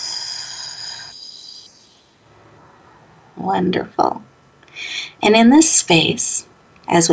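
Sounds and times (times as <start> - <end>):
inhale through nose, exhale through pursed lips: 0.0 - 2.0
speech: 3.4 - 7.1.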